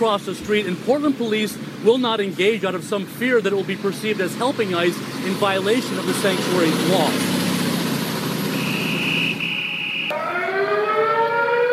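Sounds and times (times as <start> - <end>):
speech: 0.0 - 7.4
sirens wailing outdoors at night: 8.4 - 11.7.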